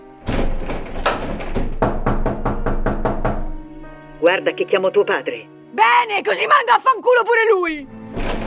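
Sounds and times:
heavy knocking on a closed door: 0.3 - 3.6
speech: 4.3 - 8.3.

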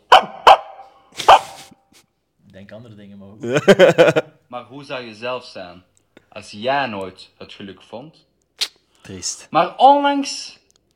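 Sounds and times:
dog barking: 0.0 - 1.7
speech: 2.6 - 8.3, 9.1 - 10.6
laughter: 3.4 - 4.4.

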